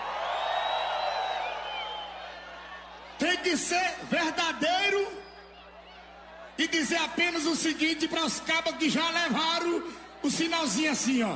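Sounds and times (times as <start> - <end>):
high whoops: 0.0 - 2.8
large crowd roaring and cheering: 0.0 - 11.3
speech: 3.3 - 5.3, 6.6 - 11.3.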